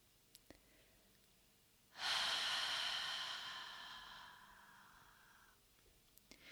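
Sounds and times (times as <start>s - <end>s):
long slow exhale through the mouth during a guided breathing exercise: 2.0s - 5.6s.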